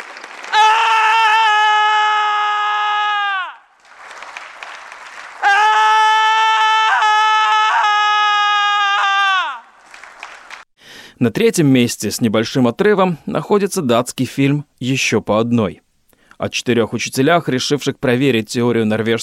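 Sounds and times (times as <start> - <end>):
noise: 0.0 - 19.2
man screaming in protest: 0.5 - 3.7, 5.4 - 9.8
speech: 11.2 - 15.8, 16.4 - 19.2.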